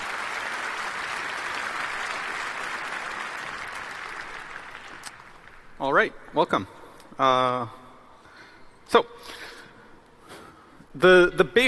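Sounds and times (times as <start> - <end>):
crowd applauding: 0.0 - 5.8
speech: 5.8 - 7.8, 8.9 - 9.4, 11.0 - 11.6.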